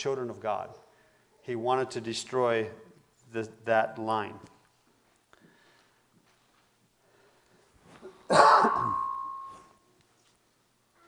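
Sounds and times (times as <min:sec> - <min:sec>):
speech: 0:00.0 - 0:04.6
loud cough from someone with a sore throat: 0:08.3 - 0:09.1
throat clearing: 0:08.3 - 0:09.1.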